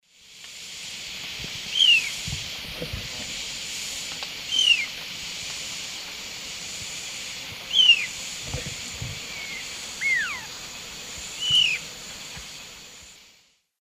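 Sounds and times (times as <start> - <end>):
juvenile Myrmeciza fortis call in the Eastern Lowlands of South America: 1.7 - 2.2, 4.5 - 4.9, 7.7 - 8.2, 9.2 - 10.6, 11.4 - 11.9.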